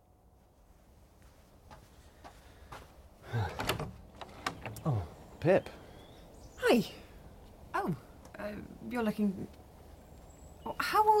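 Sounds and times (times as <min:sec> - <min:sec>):
front door opening with soft click: 0:03.5 - 0:04.8
speech: 0:05.4 - 0:05.8, 0:06.7 - 0:07.0, 0:07.9 - 0:09.6, 0:10.9 - 0:11.1.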